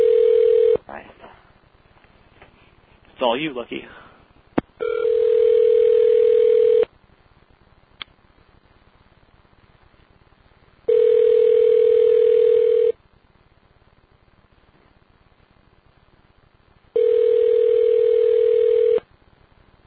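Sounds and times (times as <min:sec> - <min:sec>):
phone ringback tone while calling a store: 0:00.0 - 0:00.8, 0:04.8 - 0:06.9, 0:10.9 - 0:13.0, 0:17.0 - 0:19.0
speech: 0:03.2 - 0:04.0.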